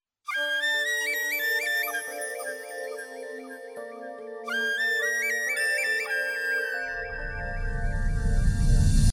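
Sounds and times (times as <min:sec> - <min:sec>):
flute tone ringtone: 0:00.4 - 0:08.0.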